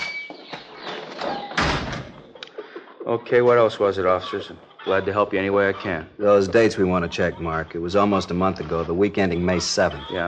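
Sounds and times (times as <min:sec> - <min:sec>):
sticking door shoved hard and banging shut: 0:00.0 - 0:02.2
speech: 0:01.2 - 0:01.5, 0:03.1 - 0:10.2.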